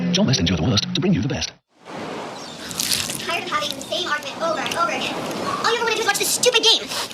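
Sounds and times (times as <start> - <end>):
speech: 0.2 - 1.5, 4.3 - 7.1
bears splashing in river water at the river mouth catching salmon: 1.8 - 7.1.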